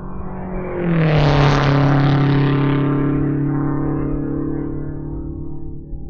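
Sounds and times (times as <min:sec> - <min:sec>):
race car engine roaring during time trials on a speedway: 0:00.0 - 0:06.0.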